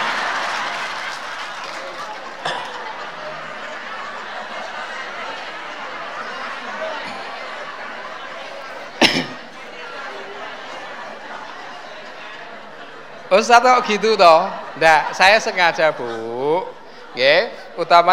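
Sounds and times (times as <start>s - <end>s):
audience clapping hands: 0.0s - 6.8s
laughter: 0.0s - 18.1s
speech: 13.4s - 18.1s.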